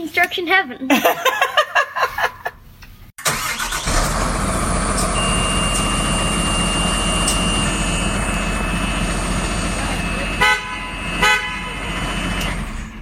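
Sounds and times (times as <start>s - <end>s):
speech: 0.1s - 1.5s
deep rumbling truck engine: 3.4s - 13.0s
truck horn honking: 5.6s - 12.3s.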